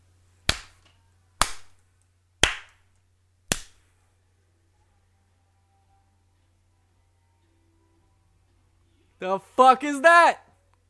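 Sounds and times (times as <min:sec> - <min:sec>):
hand slaps in a slow rhythm: 0:00.4 - 0:01.8, 0:02.4 - 0:02.8, 0:03.5 - 0:03.8
speech: 0:09.2 - 0:10.4.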